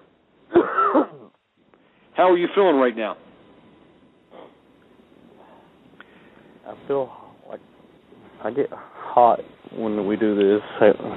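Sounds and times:
man giving a deep forceful cough during a prayer: 0:00.5 - 0:01.3
speech: 0:02.2 - 0:03.3, 0:06.8 - 0:07.7, 0:08.4 - 0:11.1.

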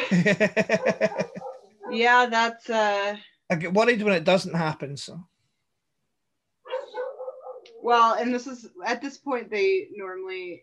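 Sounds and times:
laughter: 0:00.0 - 0:01.5
speech: 0:00.1 - 0:05.3, 0:07.8 - 0:10.6
dogs barking: 0:00.6 - 0:02.1, 0:06.7 - 0:08.0.

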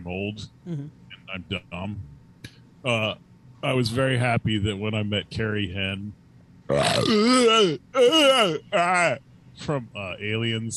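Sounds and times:
speech: 0:00.0 - 0:02.1, 0:02.8 - 0:10.7
loud voiced burp: 0:06.7 - 0:09.2.

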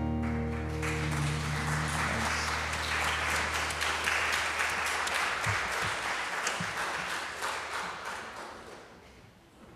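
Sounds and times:
audience applause at the end of a morning service: 0:00.2 - 0:09.2.

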